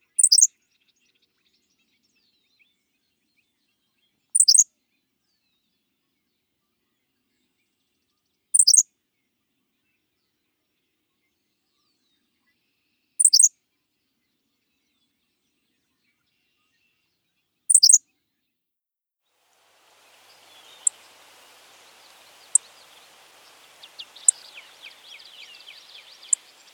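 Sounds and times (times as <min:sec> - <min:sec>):
Henslow's Sparrow singing: 0:00.2 - 0:00.5, 0:04.4 - 0:04.6, 0:08.6 - 0:08.8, 0:13.2 - 0:13.5, 0:17.7 - 0:18.0, 0:19.6 - 0:26.7.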